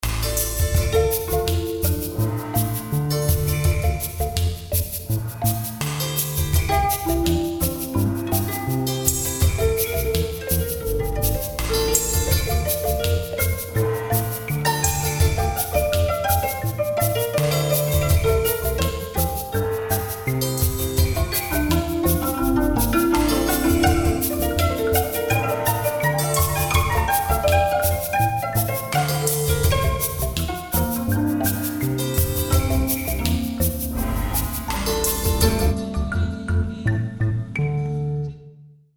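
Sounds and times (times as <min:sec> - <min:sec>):
harp: 0:00.0 - 0:38.5.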